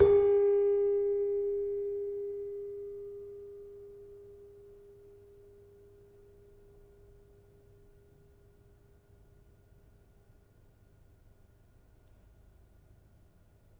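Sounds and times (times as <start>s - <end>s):
gamelan demung: 0.0s - 3.4s.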